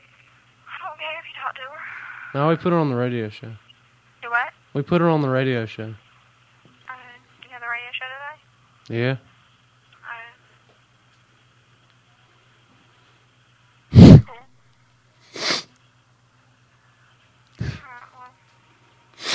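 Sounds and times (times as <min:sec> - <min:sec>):
faint steady hum: 0:00.0 - 0:19.3
speech: 0:01.6 - 0:03.6, 0:04.7 - 0:06.0, 0:08.9 - 0:09.3
stifled sneezes: 0:13.9 - 0:14.3, 0:15.3 - 0:15.7, 0:17.6 - 0:17.8, 0:19.2 - 0:19.3.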